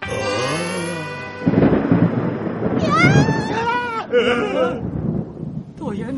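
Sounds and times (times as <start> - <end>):
heavy rolling thunder during a storm at sea: 1.3 - 6.1
high wavering voices crying out: 2.8 - 4.9
speech: 4.2 - 4.9.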